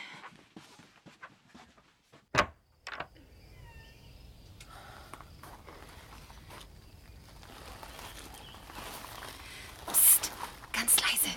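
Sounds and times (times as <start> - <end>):
door shutting with a sharp thud: 2.3 - 3.2
nighttime insects chirping: 2.4 - 11.3
hushed whispered voices: 9.9 - 11.3.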